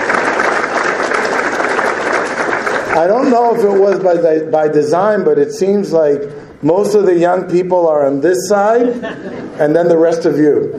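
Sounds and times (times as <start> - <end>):
audience applause for young people at a talk: 0.0 - 4.2
speech: 3.0 - 10.7
laughter: 8.7 - 10.7.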